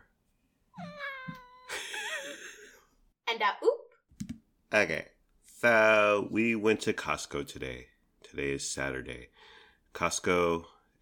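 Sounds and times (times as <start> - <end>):
cat meowing: 0.8 - 1.8
speech: 3.4 - 3.8, 4.7 - 11.0.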